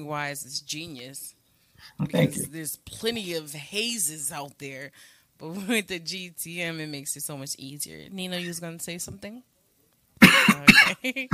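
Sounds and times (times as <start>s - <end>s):
speech: 0.0s - 9.5s, 10.6s - 11.3s
harsh hacking coughs: 10.2s - 11.3s.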